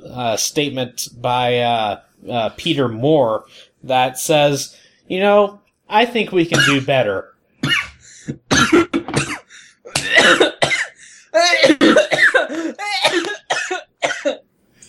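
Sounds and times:
speech: 0.2 - 7.3, 10.2 - 10.8
person coughing in a choking fit from saliva: 6.5 - 6.9, 7.6 - 14.4.

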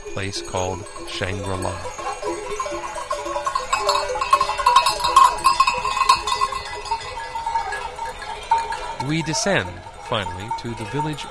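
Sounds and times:
cattle and yak calls: 0.0 - 11.2
grazing cattle and yak bells clinking near farmhouses: 0.0 - 11.2
speech: 0.2 - 2.0, 9.0 - 11.2.

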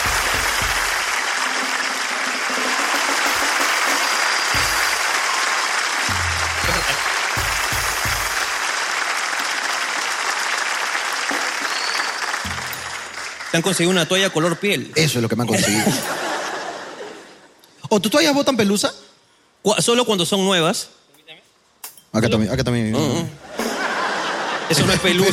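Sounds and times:
live audience applause: 0.0 - 14.5
laughter: 6.6 - 7.1, 15.5 - 17.6, 23.2 - 25.3
speech: 13.6 - 16.2, 17.9 - 19.0, 19.6 - 21.0, 22.2 - 23.4, 24.7 - 25.3.

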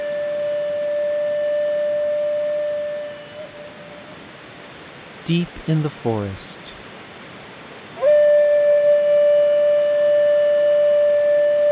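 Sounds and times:
lone flute sounding one long steady note: 0.0 - 4.2, 8.0 - 11.7
speech: 5.3 - 6.8.

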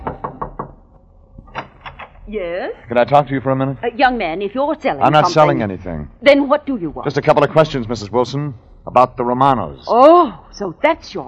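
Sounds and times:
knocking on an apartment door in a two-story apartment house: 0.0 - 2.1
speech: 2.3 - 11.2.

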